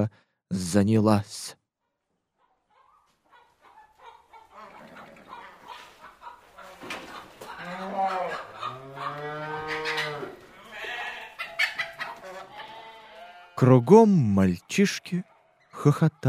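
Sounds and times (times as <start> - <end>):
speech: 0.0 - 1.6, 13.6 - 16.2
turkeys calling in a farmyard: 2.4 - 13.2
other livestock noises in a farmyard: 2.4 - 16.2
wet rooster crowing: 7.6 - 13.6.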